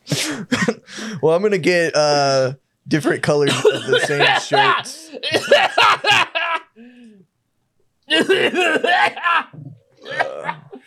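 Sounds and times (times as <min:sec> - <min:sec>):
speech: 0:00.4 - 0:00.6, 0:01.2 - 0:07.3, 0:08.1 - 0:10.6
person coughing at the back of a store: 0:03.5 - 0:06.2, 0:08.1 - 0:10.8.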